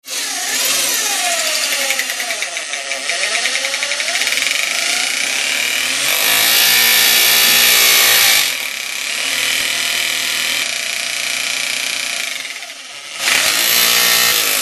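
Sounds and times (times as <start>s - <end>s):
rotary hammer drilling: 0.0s - 14.6s.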